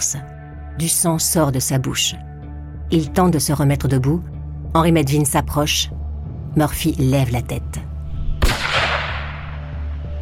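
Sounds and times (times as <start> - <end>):
speech: 0.8 - 2.3, 2.9 - 6.0, 6.6 - 7.9
single loud gunshot from a firearm: 8.4 - 9.7.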